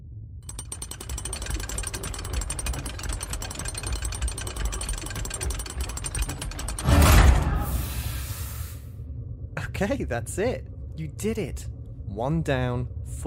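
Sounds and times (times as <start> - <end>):
quieter mechanical hum: 0.0 - 13.2
rapid mechanical clicking of a winding shaft cranked by hand: 0.4 - 7.5
speech: 9.8 - 13.2.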